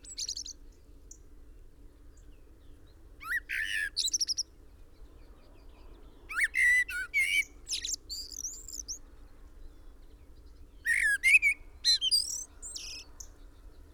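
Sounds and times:
common blackbird Turdus merula scratchy calls: 0:00.1 - 0:00.5, 0:06.4 - 0:09.0, 0:10.9 - 0:13.1.

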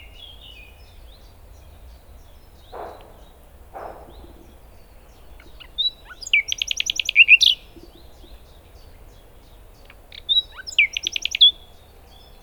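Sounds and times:
common nightingale Luscinia megarhynchos song with pulsed trills and sweeping whistles: 0:00.0 - 0:12.4
soft low thumps: 0:02.6 - 0:05.8.

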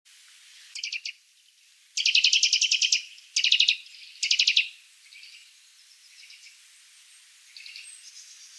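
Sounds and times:
Eurasian nuthatch Sitta europaea giving rapid high trilled notes: 0:02.0 - 0:04.7.

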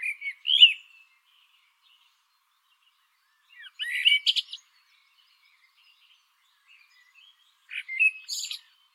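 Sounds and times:
Eurasian blackbird Turdus merula singing: 0:00.0 - 0:08.9.

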